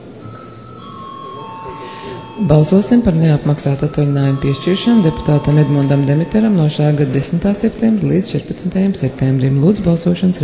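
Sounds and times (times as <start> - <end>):
low murmur: 0.0 - 10.4
electronic bell rung to call parliament session: 0.2 - 7.9
speech: 2.0 - 10.4.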